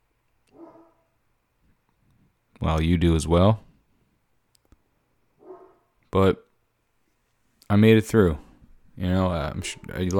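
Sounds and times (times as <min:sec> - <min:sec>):
dog barking: 0:00.5 - 0:01.1, 0:05.4 - 0:05.9
speech: 0:02.6 - 0:03.7, 0:06.1 - 0:06.4, 0:07.7 - 0:08.4, 0:09.0 - 0:10.1.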